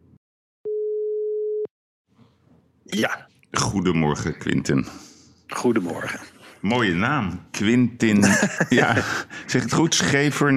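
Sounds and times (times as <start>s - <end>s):
telephone ringing tone beep while placing a call: 0.7s - 1.7s
speech: 2.9s - 10.5s
laughter: 8.2s - 9.4s.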